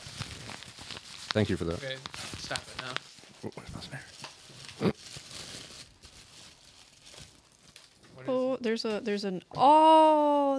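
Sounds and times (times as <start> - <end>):
paper crinkling while unwrapping a package: 0.0 - 8.2
speech: 1.3 - 5.0, 8.6 - 10.5.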